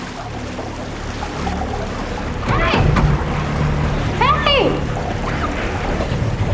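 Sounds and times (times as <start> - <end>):
low hum: 0.0 - 6.5
water filling a glass box: 0.0 - 6.5
woman shouting in alarm: 4.2 - 4.8.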